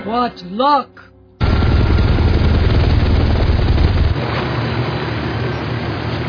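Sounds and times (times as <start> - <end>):
speech: 0.2 - 1.1
loud steady helicopter roar with deep low rumble: 1.4 - 6.2.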